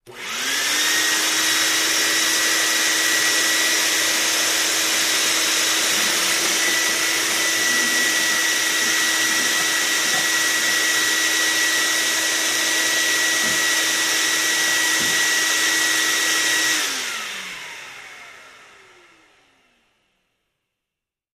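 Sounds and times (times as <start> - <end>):
industrial shop vacuum sucking up wood particles on table: 0.1 - 17.6.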